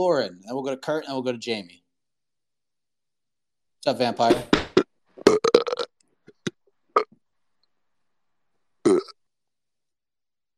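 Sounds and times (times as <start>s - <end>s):
speech: 0.0s - 1.8s, 3.8s - 4.6s, 5.3s - 5.5s
person burping: 4.4s - 7.2s, 8.8s - 9.2s
grunting belches: 4.7s - 7.2s, 8.9s - 9.2s.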